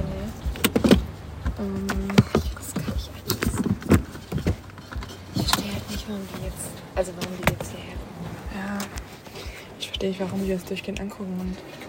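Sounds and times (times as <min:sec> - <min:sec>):
car door locks clunking shut: 0:00.0 - 0:09.2
speech: 0:01.6 - 0:02.2, 0:06.1 - 0:09.0, 0:09.8 - 0:11.8.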